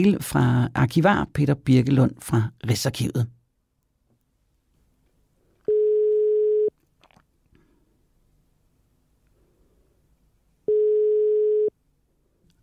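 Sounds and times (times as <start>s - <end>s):
speech: 0.0s - 3.4s
ringback tone of an outgoing phone call: 5.7s - 6.7s, 10.7s - 11.7s.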